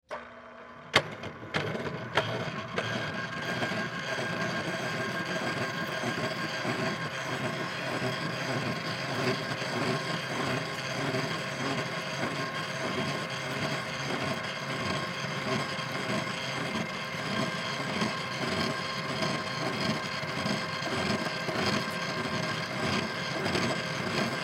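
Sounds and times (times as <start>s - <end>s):
drill press bit drilling metal: 0.1s - 24.4s.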